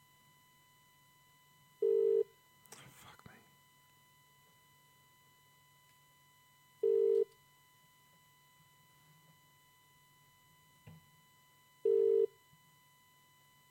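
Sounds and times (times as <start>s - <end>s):
phone ringback tone while calling a friend: 1.8s - 2.3s, 6.8s - 7.3s, 11.8s - 12.4s
quiet phone line hiss: 1.8s - 2.3s, 3.7s - 7.4s, 10.1s - 13.6s.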